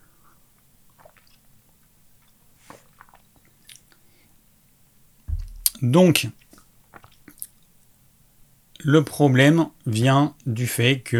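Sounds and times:
sipping water: 0:00.0 - 0:08.0
soft wet mouth clicks and swallowing: 0:00.2 - 0:04.3, 0:06.4 - 0:07.8
brief louder knock: 0:05.3 - 0:05.8
speech: 0:05.8 - 0:06.4, 0:08.8 - 0:11.1.

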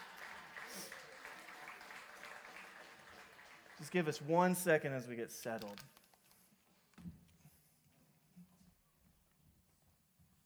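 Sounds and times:
audience applauding: 0:00.0 - 0:05.8
speech: 0:03.8 - 0:06.0.

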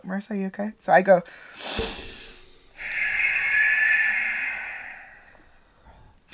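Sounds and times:
speech: 0:00.1 - 0:02.1
deep inhale: 0:01.3 - 0:06.3
forceful snort of air pushed out through the nose: 0:01.4 - 0:06.2.

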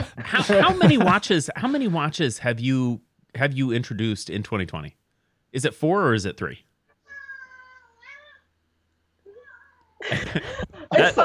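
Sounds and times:
laughter: 0:00.0 - 0:02.4, 0:10.0 - 0:11.2
speech: 0:00.3 - 0:06.7, 0:10.0 - 0:11.2
domestic cat meowing: 0:07.0 - 0:08.5, 0:09.2 - 0:10.0.

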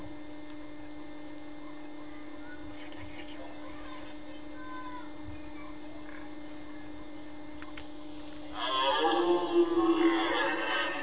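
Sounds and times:
background hum: 0:00.0 - 0:11.0
red deer bellowing during the rut: 0:08.5 - 0:11.0.

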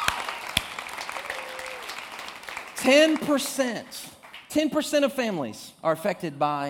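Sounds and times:
audience clapping: 0:00.0 - 0:04.7
speech: 0:02.8 - 0:06.6.

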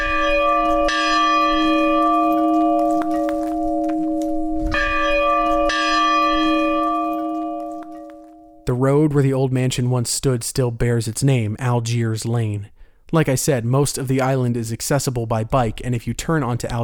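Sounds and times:
large heavy bell from an old beachside mansion ringing: 0:00.0 - 0:08.7
speech: 0:08.7 - 0:16.8.

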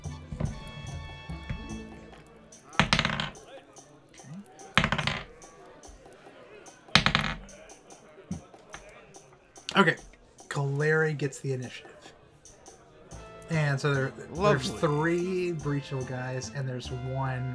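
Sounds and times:
faint voices murmuring: 0:00.0 - 0:17.5
dice being grabbed and rolled: 0:02.8 - 0:03.4, 0:04.8 - 0:05.3
speech: 0:09.8 - 0:10.1, 0:10.8 - 0:12.0, 0:13.5 - 0:17.5.

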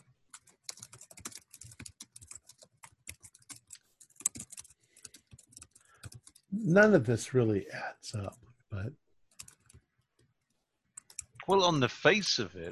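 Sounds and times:
typing on a computer keyboard: 0:00.0 - 0:06.5, 0:09.3 - 0:10.3, 0:11.0 - 0:11.4
speech: 0:06.5 - 0:08.4, 0:11.5 - 0:12.7.

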